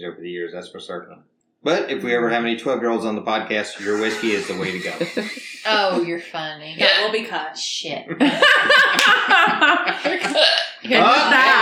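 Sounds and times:
speech: 0:00.0 - 0:11.6
person hiccuping: 0:03.8 - 0:06.2
person laughing and chuckling: 0:03.8 - 0:06.4, 0:08.3 - 0:10.6.

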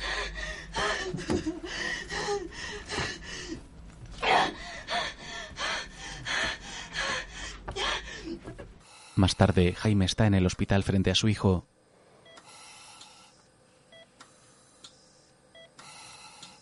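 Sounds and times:
woman crying and gasping for breath during an anxiety attack: 0:00.0 - 0:03.6, 0:04.3 - 0:08.5
speech: 0:09.4 - 0:11.8.

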